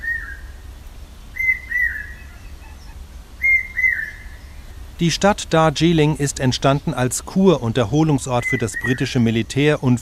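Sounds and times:
common hawk-cuckoo calling: 0:00.0 - 0:00.5, 0:01.4 - 0:04.6, 0:08.4 - 0:09.1
low steady rumble: 0:00.0 - 0:10.0
speech: 0:05.0 - 0:10.0.

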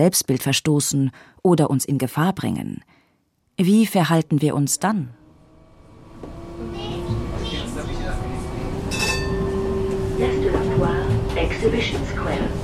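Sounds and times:
speech: 0:00.0 - 0:03.0, 0:03.6 - 0:05.2
faint metallic whine of a tram: 0:05.2 - 0:10.5
tram in Basel rattling along its tracks toward the Messe: 0:06.1 - 0:12.6.

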